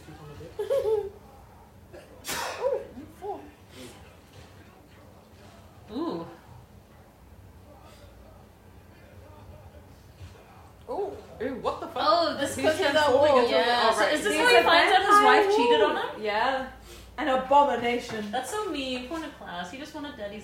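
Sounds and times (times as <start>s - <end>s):
sharp explosive sneezes: 2.2s - 2.8s
speech: 11.4s - 20.4s.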